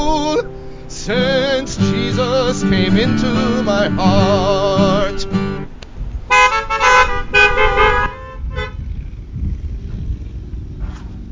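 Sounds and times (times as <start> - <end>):
low traffic rumble: 0.0 - 11.3
wind: 0.0 - 11.3
speech: 0.1 - 5.3
car horns honking outdoors: 6.3 - 8.8.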